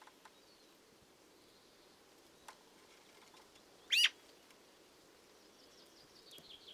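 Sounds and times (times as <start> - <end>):
quiet hiss: 0.0 - 6.7
Eurasian magpie Pica pica making a rough scratchy note: 3.9 - 4.2.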